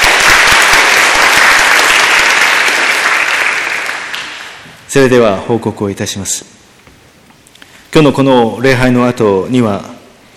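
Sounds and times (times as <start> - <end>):
church audience applause at a worship service in Shinagawa: 0.0 - 4.6
speech: 4.9 - 6.7, 7.9 - 10.0.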